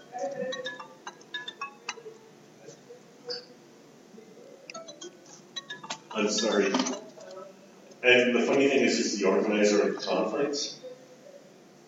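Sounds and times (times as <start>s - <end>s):
phone ringtone for an incoming call: 0.0s - 2.3s, 4.7s - 7.1s
low murmuring background: 0.0s - 11.8s
speech: 6.2s - 7.0s, 8.0s - 10.8s.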